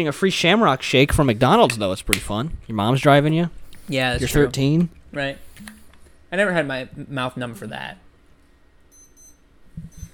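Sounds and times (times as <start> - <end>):
speech: 0.0 - 8.0
alarm clock beeping in short high-pitched bursts: 8.9 - 10.1.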